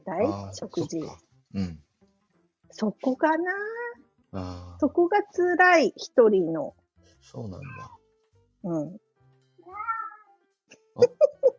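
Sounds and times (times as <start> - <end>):
speech: 0.1 - 1.8, 2.7 - 8.0, 8.6 - 9.0, 11.0 - 11.3
brief bursts of human voice: 1.6 - 1.8, 4.4 - 4.8
cat meowing: 7.6 - 8.0, 9.6 - 10.4.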